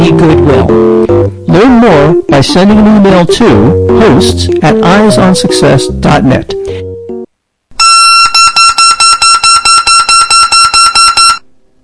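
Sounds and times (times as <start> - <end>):
speech: 0.2 - 6.8
beep baseball beeping after pin pulled: 7.8 - 11.4.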